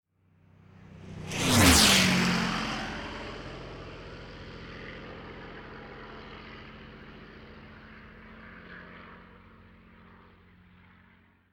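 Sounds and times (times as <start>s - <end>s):
big propeller airplane passing: 0.3s - 11.3s.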